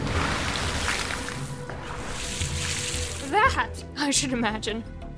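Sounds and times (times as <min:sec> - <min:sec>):
sudden water splash: 0:00.0 - 0:03.4
speech: 0:03.5 - 0:05.0.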